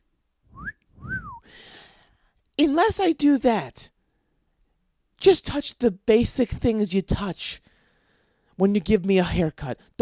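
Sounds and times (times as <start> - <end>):
person whistling: 0.5 - 1.5
speech: 2.6 - 4.0, 5.2 - 7.7, 8.6 - 10.0.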